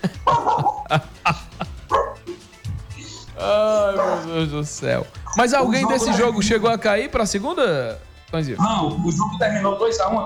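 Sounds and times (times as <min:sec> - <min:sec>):
laughter: 0:00.0 - 0:02.2
dog barking: 0:00.2 - 0:00.8, 0:01.9 - 0:02.4, 0:04.0 - 0:04.4, 0:05.2 - 0:06.4
speech: 0:00.4 - 0:01.1, 0:04.4 - 0:10.2.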